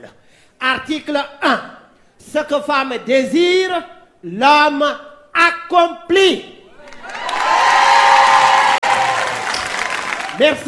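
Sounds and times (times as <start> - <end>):
speech: 0.0 - 6.6, 10.4 - 10.6
women in an audience clapping and cheering: 6.8 - 10.6.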